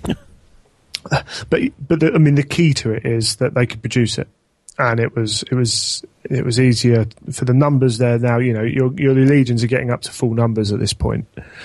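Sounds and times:
person coughing: 0.0 - 0.3, 1.0 - 1.6
speech: 1.1 - 11.6.

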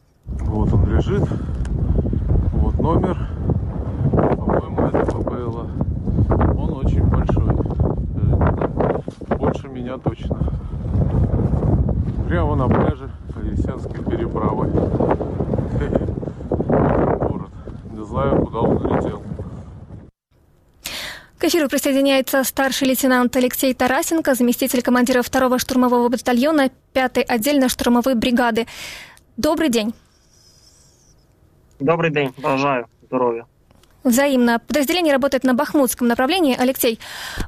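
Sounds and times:
strong gusting wind during a snowstorm in Ukraine: 0.2 - 20.2
speech: 0.6 - 1.6, 2.8 - 3.4, 4.9 - 7.7, 9.5 - 11.3, 12.3 - 16.1, 21.4 - 30.0, 31.8 - 37.4.

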